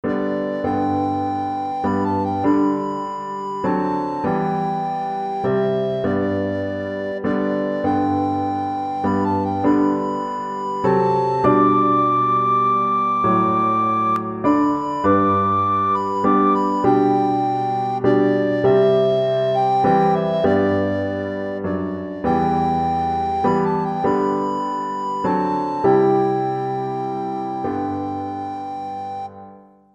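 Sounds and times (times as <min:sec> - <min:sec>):
recorder melody: 0:00.0 - 0:29.6.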